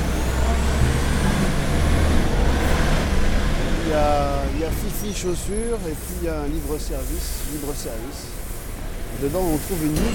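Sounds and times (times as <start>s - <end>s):
garbage truck engine rumbling while collecting waste in town: 0.0s - 10.1s
speech: 5.1s - 8.4s, 9.2s - 10.1s
broad hiss: 5.8s - 10.1s.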